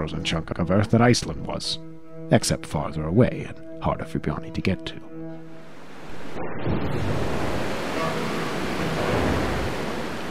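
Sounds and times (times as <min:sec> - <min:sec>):
speech: 0:00.0 - 0:05.1
rough sea waves surging and crashing: 0:05.7 - 0:10.2
gusting north wind blowing over the water in fog: 0:05.8 - 0:10.2.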